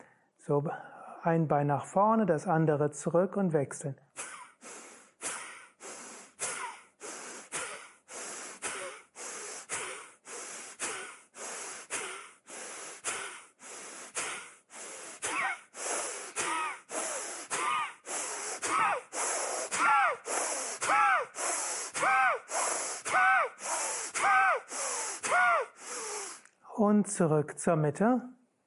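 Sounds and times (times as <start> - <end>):
speech: 0.5 - 4.2, 27.2 - 28.4
forceful rhythmic yoga power breathing in a shoulder stand: 4.2 - 26.6.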